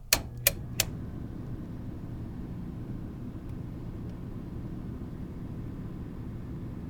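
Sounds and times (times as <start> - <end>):
hotel heating system running: 0.0 - 6.8.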